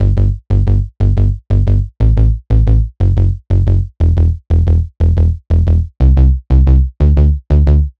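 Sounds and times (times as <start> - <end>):
adventurous melody with punchy bass in G major at 120 BPM: 0.0 - 7.9.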